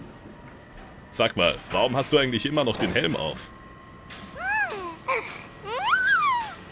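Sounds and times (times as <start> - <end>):
speech: 1.1 - 4.2
baby babbling in a studio: 4.4 - 6.6.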